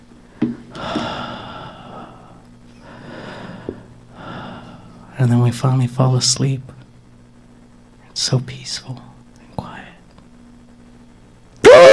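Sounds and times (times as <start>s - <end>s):
speech: 0.4s - 1.1s, 5.2s - 6.8s, 8.2s - 9.1s
voice imitating warm sensual breathing on an ear: 0.4s - 5.1s.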